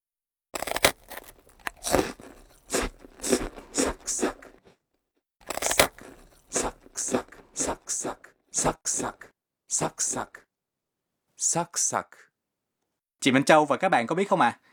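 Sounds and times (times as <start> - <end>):
crunchy bites into crisp food: 0.6 - 4.8, 5.4 - 9.2
speech: 11.6 - 12.2, 13.2 - 14.7.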